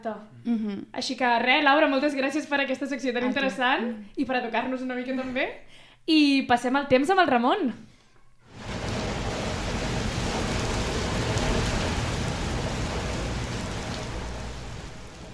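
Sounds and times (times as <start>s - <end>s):
speech: 0.0s - 7.9s
low rumbling undertone: 8.5s - 15.3s
steady rain falling: 8.5s - 15.3s.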